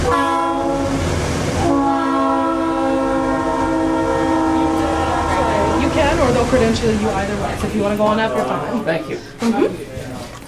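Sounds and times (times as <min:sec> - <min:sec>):
passing train horn blaring: 0:00.0 - 0:07.6
rumbling rail noise of passing train: 0:00.0 - 0:08.7
speech: 0:06.5 - 0:09.9.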